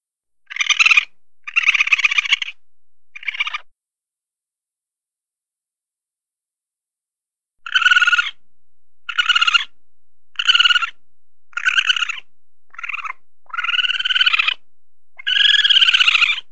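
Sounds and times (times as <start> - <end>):
raccoon chittering with squeaks: 0.5 - 2.6, 3.2 - 3.7, 7.6 - 8.4, 9.0 - 14.6, 15.2 - 16.5.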